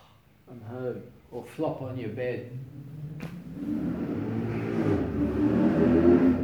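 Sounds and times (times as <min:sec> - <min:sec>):
speech: 0:00.5 - 0:04.0
car engine revving and accelerating: 0:02.4 - 0:06.4.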